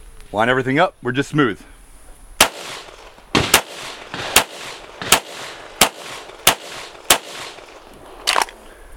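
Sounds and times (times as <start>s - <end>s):
speech: 0.3s - 1.7s
handgun shots: 2.4s - 7.6s.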